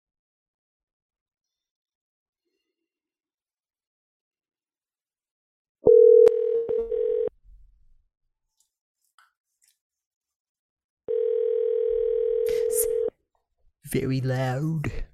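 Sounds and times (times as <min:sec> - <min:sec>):
telephone dial tone on a single phone line while dialing: 0:05.9 - 0:07.3, 0:11.1 - 0:13.1
speech: 0:13.9 - 0:15.1.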